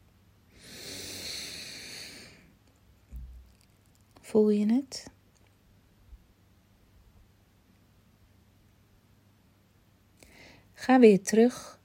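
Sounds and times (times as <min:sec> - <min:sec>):
long forceful sniff through the nose: 0:00.6 - 0:02.4
speech: 0:04.3 - 0:05.2, 0:10.9 - 0:11.8.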